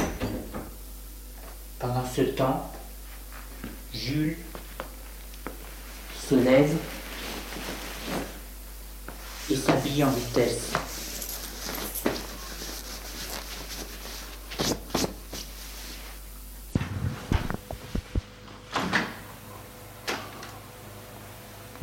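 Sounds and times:
door being opened: 0.0s - 0.7s
quiet hum: 0.0s - 21.8s
speech: 1.9s - 2.8s, 4.0s - 4.5s, 6.3s - 7.0s, 9.5s - 10.9s.

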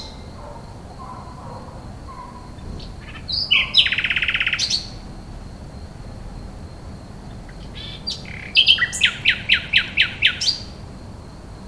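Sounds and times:
common nightingale song: 0.0s - 5.0s, 7.2s - 10.9s.

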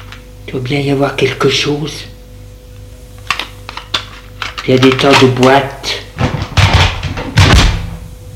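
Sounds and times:
speech: 0.5s - 2.1s, 4.6s - 5.8s
small medicine cabinet door opening with knocks and rattle: 6.2s - 7.9s.

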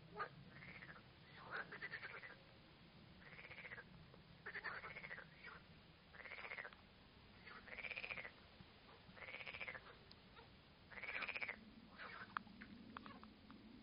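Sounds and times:
frog chorus with rattling pulsed croaks in Arles: 0.0s - 2.5s, 3.2s - 13.3s.

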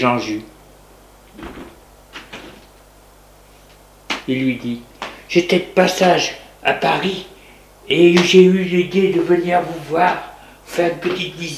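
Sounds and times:
speech: 0.0s - 0.5s, 4.3s - 7.3s, 7.9s - 11.5s
thump against a door: 1.4s - 2.6s.

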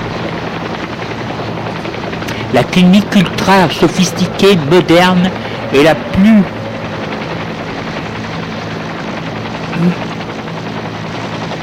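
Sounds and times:
helicopter rotor whirring as it arrives at a clinic landing pad: 0.0s - 11.6s
speech: 2.5s - 6.6s, 9.8s - 10.0s.

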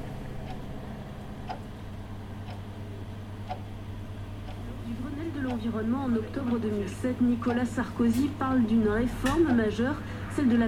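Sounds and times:
continuous low hum: 0.0s - 10.6s
clock ticking in a small shop: 1.4s - 1.7s, 2.4s - 2.6s, 3.4s - 3.7s, 4.4s - 10.6s
speech: 5.6s - 10.6s.

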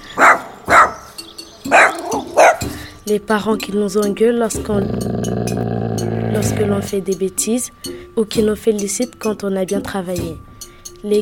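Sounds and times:
dog barking: 0.2s - 1.1s, 1.7s - 2.7s
speech: 3.1s - 5.3s, 6.4s - 11.2s.

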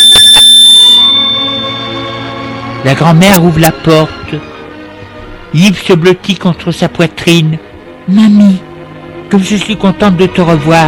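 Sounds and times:
doorbell ringing at a front door: 0.0s - 2.4s
speech: 2.9s - 4.5s, 5.5s - 8.6s, 9.3s - 10.8s.

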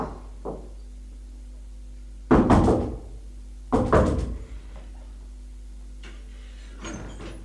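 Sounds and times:
woman banging on a locked door: 0.0s - 0.7s, 2.3s - 4.5s.

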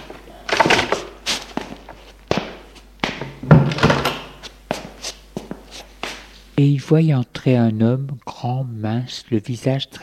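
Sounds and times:
living room door swinging with soft thumps: 3.2s - 4.4s
speech: 6.6s - 10.0s.

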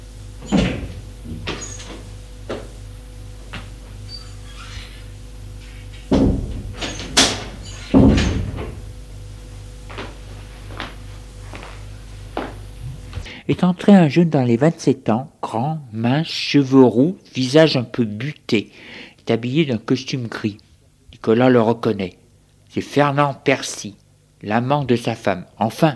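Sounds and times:
steady low hum: 0.0s - 13.3s
door handled with thuds and rattles: 0.4s - 2.7s, 6.0s - 9.0s
light knocks on an office door: 6.1s - 8.8s
speech: 13.5s - 20.6s, 21.2s - 25.9s.

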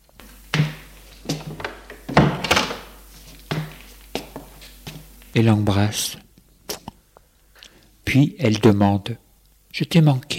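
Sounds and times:
door being shut with solid wooden thuds: 1.4s - 2.9s
speech: 5.4s - 6.2s, 8.1s - 9.2s, 9.8s - 10.3s.

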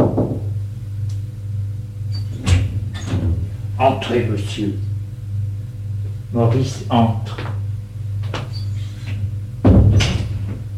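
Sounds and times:
steady low hum: 0.0s - 10.7s
speech: 3.8s - 4.9s, 6.3s - 7.5s
knocking on the door of a first-floor salon: 9.6s - 10.2s.

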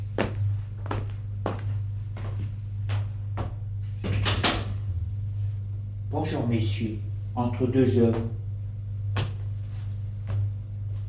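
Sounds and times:
steady low hum: 0.0s - 11.0s
footsteps: 0.2s - 3.6s, 9.1s - 11.0s
speech: 6.2s - 8.4s.

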